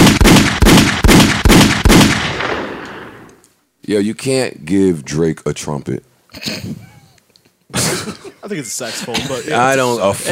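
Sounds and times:
rapid gunshots: 0:00.0 - 0:03.3
speech: 0:03.9 - 0:06.9, 0:07.7 - 0:10.3.

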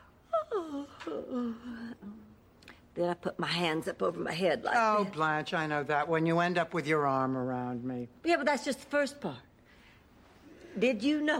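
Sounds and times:
exaggerated theatrical yawn voiced aloud: 0:00.3 - 0:02.3
speech: 0:01.0 - 0:02.4, 0:03.0 - 0:09.5, 0:10.8 - 0:11.3.

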